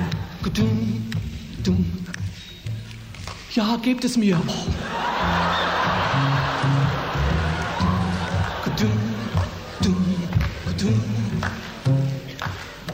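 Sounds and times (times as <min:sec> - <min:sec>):
crowd clapping along in rhythm: 0:00.0 - 0:03.5, 0:04.8 - 0:12.9
speech: 0:00.5 - 0:01.0, 0:01.6 - 0:02.1, 0:03.6 - 0:05.1
laughter: 0:04.8 - 0:10.6.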